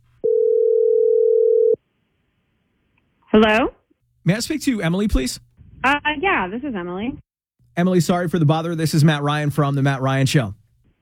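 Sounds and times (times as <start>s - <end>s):
telephone dial tone while calling a number: 0.2s - 1.8s
speech: 3.4s - 7.2s, 7.8s - 10.6s.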